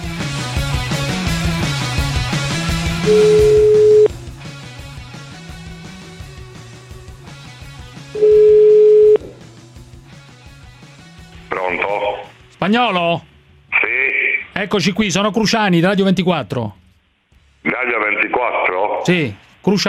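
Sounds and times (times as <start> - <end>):
loud continuous music: 0.0 - 12.5
ringback tone of an outgoing telephone call: 3.0 - 4.1, 8.2 - 9.2
speech: 3.1 - 3.4, 12.7 - 13.3, 14.6 - 16.8, 17.6 - 19.8.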